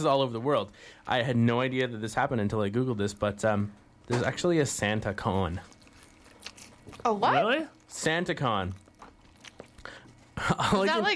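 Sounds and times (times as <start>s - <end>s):
speech: 0.0s - 5.8s, 6.9s - 8.8s, 10.4s - 11.1s
soft wet chewing: 4.1s - 10.4s.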